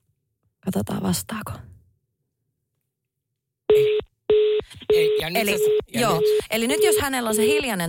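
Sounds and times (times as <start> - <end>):
speech: 0.6 - 1.7, 4.9 - 7.8
electronic ringing tone of an outgoing phone call: 3.7 - 7.6.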